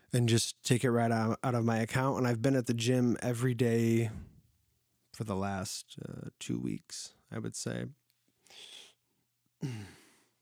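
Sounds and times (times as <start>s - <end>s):
speech: 0.1s - 4.3s, 5.2s - 8.8s, 9.6s - 10.0s
heavy breathing into the microphone: 8.5s - 9.0s.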